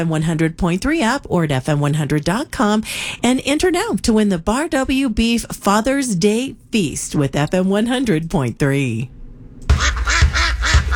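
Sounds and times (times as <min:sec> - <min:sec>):
speech: 0:00.0 - 0:09.2
geese and grebes calling at a bird refuge in spring: 0:09.7 - 0:10.9.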